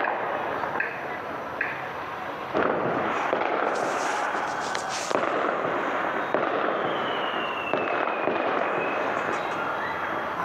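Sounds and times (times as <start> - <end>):
hissing crackling din: 0.0 - 10.4
gunfire at night: 2.5 - 9.8.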